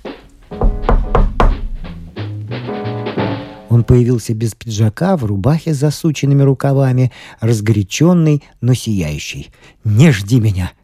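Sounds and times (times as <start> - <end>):
knocking on a workshop door: 0.5 - 2.0
speech: 3.9 - 10.8.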